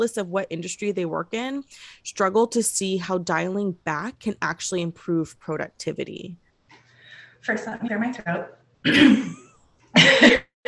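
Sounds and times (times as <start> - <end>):
speech: 0.0 - 6.4, 7.4 - 9.4
person clearing throat: 8.8 - 10.6.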